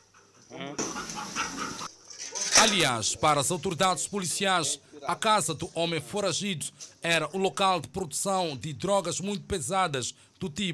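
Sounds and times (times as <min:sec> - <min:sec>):
police sniffer dog panting while searching a yard in Maputo: 0:00.0 - 0:01.9
speech: 0:02.6 - 0:10.7.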